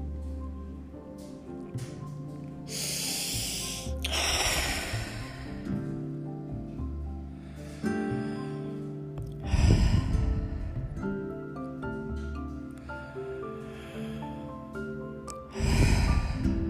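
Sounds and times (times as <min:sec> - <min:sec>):
soft sustained instrumental music: 0:00.0 - 0:16.6
slow deep breaths: 0:02.7 - 0:06.0, 0:07.2 - 0:11.3, 0:12.8 - 0:16.6.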